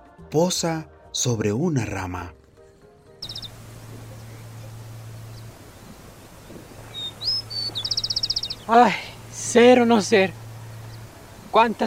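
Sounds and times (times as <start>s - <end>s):
speech: 0.3s - 2.4s, 8.7s - 10.4s, 11.6s - 11.8s
steady low hum: 3.2s - 11.6s
rufous-collared sparrow singing: 3.2s - 11.8s.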